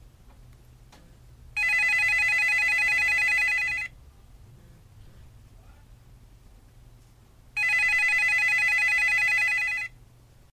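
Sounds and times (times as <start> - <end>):
home phone ringing: 1.6 - 3.9, 7.6 - 10.0.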